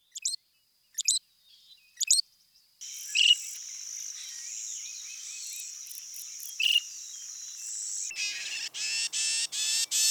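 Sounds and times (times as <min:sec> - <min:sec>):
Loggerhead Shrike: 0:02.8 - 0:10.1.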